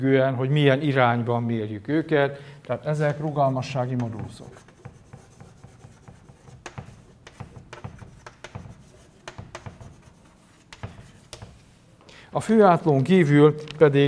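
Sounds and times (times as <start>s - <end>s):
speech: 0.0s - 4.7s, 12.4s - 14.0s
writing on a board during a lecture: 3.1s - 11.8s.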